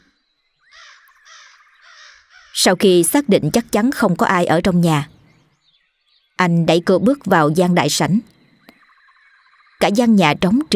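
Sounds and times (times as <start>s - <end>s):
flock of crows cawing as they take flight at dusk: 0.6s - 2.6s
speech: 2.6s - 5.2s, 6.4s - 8.4s, 9.8s - 10.7s.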